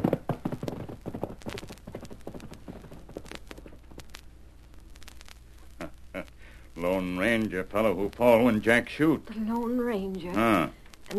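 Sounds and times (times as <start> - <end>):
horse hooves clip-clopping as the horse is ridden: 0.0 - 4.3
low steady hum: 0.0 - 11.1
speech: 6.8 - 11.1.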